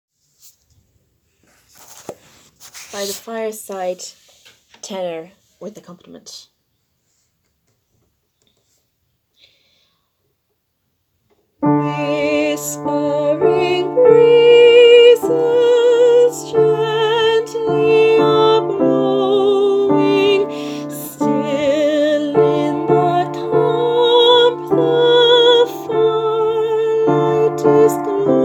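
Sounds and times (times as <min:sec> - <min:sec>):
piano: 0:11.6 - 0:28.4
tenor singing: 0:11.6 - 0:28.4.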